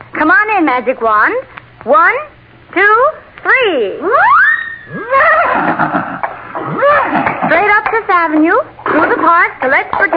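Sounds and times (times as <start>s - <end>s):
speech: 0.2s - 10.1s
horse whinnying: 4.4s - 7.6s.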